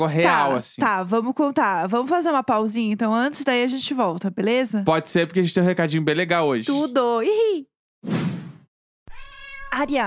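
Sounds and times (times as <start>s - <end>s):
speech: 0.0s - 8.3s, 9.8s - 10.0s
cat meowing: 9.1s - 10.0s.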